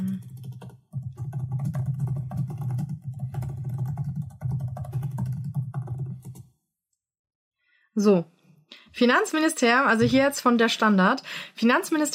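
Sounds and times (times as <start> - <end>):
rapid typing on a computer keyboard during an internet search: 0.0 - 6.5
speech: 8.0 - 8.3, 9.0 - 12.1.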